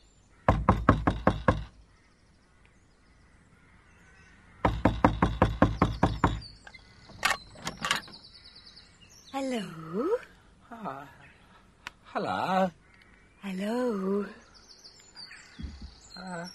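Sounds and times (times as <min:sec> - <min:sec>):
knocking on the wooden door of a lowly dwelling: 0:00.5 - 0:01.8, 0:04.6 - 0:06.5, 0:15.6 - 0:16.0
speech: 0:09.4 - 0:11.2, 0:12.1 - 0:12.8, 0:13.4 - 0:14.4, 0:16.2 - 0:16.5.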